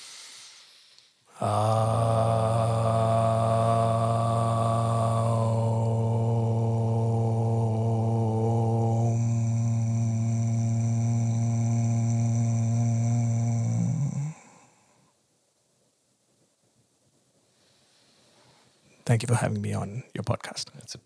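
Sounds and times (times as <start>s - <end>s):
voices chanting a drone during a meditation session: 1.3s - 14.6s
speech: 1.4s - 2.0s, 19.1s - 21.0s.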